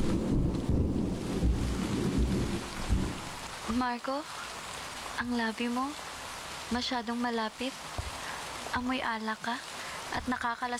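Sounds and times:
low rumbling thunder: 0.0 - 3.7
steady rain: 0.0 - 10.7
wind: 0.0 - 10.7
speech: 3.8 - 4.5, 5.2 - 6.0, 6.7 - 7.9, 8.7 - 10.7.

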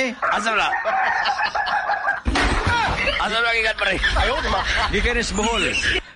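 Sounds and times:
chickens crowing and clucking: 0.0 - 3.2
speech: 0.1 - 1.8, 3.2 - 6.0
laughter: 0.7 - 6.1.

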